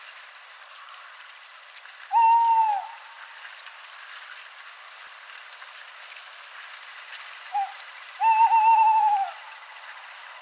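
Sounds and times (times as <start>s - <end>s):
quiet background hiss: 0.0s - 10.4s
Tawny owl Strix aluco hoot: 2.1s - 3.0s, 7.6s - 9.4s.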